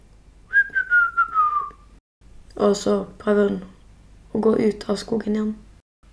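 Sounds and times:
person whistling a short tune: 0:00.5 - 0:01.9
speech: 0:02.6 - 0:03.8, 0:04.4 - 0:05.6.

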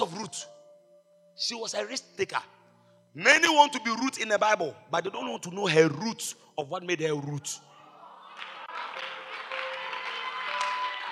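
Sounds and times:
speech: 0:00.0 - 0:00.6, 0:01.4 - 0:07.7
crowd clapping: 0:08.2 - 0:11.1.

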